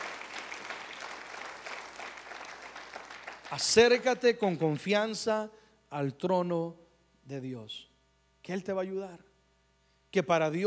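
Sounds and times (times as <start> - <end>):
congregation applauding loudly: 0.0 - 4.1
speech: 3.5 - 9.3, 10.1 - 10.6.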